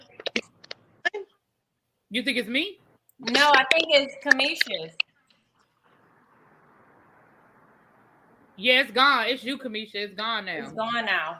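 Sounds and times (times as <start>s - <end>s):
speech: 2.1s - 5.0s, 8.6s - 11.3s
faint phone line noise: 3.3s - 9.6s.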